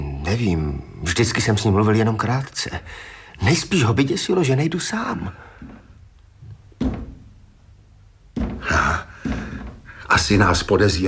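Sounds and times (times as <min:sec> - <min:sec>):
speech: 0:00.3 - 0:05.8, 0:10.1 - 0:11.0
knocking on a door: 0:06.4 - 0:07.4, 0:08.3 - 0:11.0.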